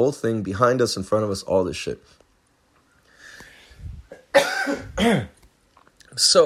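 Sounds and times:
speech: 0:00.0 - 0:02.2, 0:04.4 - 0:05.4, 0:06.1 - 0:06.4
faint throat clearing: 0:04.1 - 0:05.4
person coughing harshly: 0:04.1 - 0:05.4.

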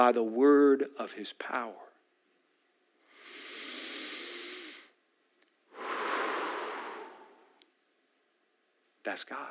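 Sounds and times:
speech: 0:00.0 - 0:01.9, 0:09.0 - 0:09.4
deep airy breath inhale and exhale: 0:03.1 - 0:05.0, 0:05.7 - 0:07.6.

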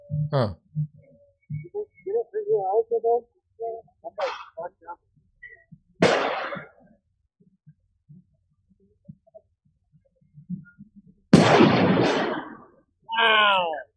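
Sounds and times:
speech: 0:00.3 - 0:00.9, 0:02.6 - 0:03.3, 0:13.2 - 0:13.8
concussion grenades exploding at a street protest: 0:06.0 - 0:06.8, 0:11.4 - 0:12.8.

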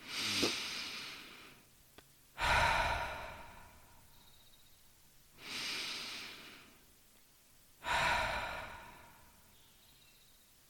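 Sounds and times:
slow deep breathing during a guided meditation: 0:00.0 - 0:01.7, 0:02.4 - 0:04.4, 0:05.3 - 0:06.9, 0:07.8 - 0:09.6.

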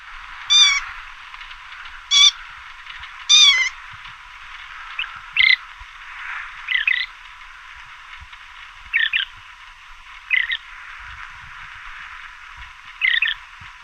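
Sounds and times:
faint hiss: 0:00.0 - 0:13.8
loggerhead shrike screaming and calling in southern Arizona: 0:00.5 - 0:01.0, 0:02.0 - 0:02.5, 0:03.2 - 0:03.8, 0:06.6 - 0:07.1, 0:10.3 - 0:10.6, 0:13.0 - 0:13.4.

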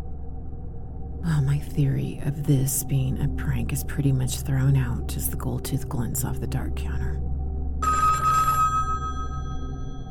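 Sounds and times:
low steady hum: 0:00.0 - 0:10.0
speech: 0:01.2 - 0:07.3
telephone in a house ringing with a metallic bell: 0:07.8 - 0:10.0.

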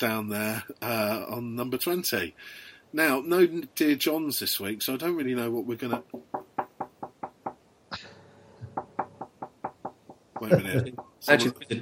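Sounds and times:
speech: 0:00.0 - 0:06.5, 0:10.4 - 0:11.7
crisp knocking on a door: 0:06.0 - 0:07.6, 0:08.6 - 0:11.2.

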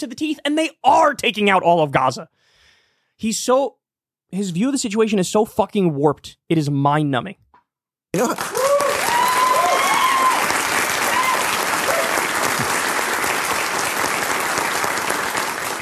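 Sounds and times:
speech: 0:00.0 - 0:02.5, 0:03.2 - 0:07.4, 0:08.1 - 0:08.6
large audience applauding: 0:08.2 - 0:15.8
whoops and shouted voices from the audience: 0:08.4 - 0:12.3.

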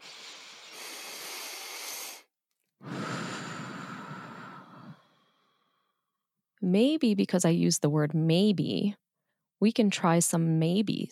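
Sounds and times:
person taking a deep breath: 0:00.0 - 0:06.0
speech: 0:06.6 - 0:09.0, 0:09.6 - 0:11.1.

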